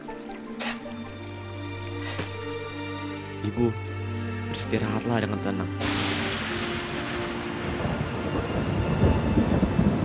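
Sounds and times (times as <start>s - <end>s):
heavy rain pouring down: 0.0s - 10.0s
speech: 3.4s - 3.9s, 4.7s - 6.0s
low rumbling thunder: 5.8s - 10.0s.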